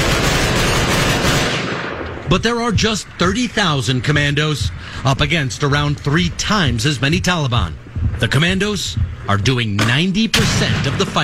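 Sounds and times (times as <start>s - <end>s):
dense loud gunfire during a commando advance in Afghanistan: 0.0s - 3.3s, 9.8s - 11.2s
heavy booms with a deep rumble: 0.0s - 11.2s
speech: 2.3s - 11.2s.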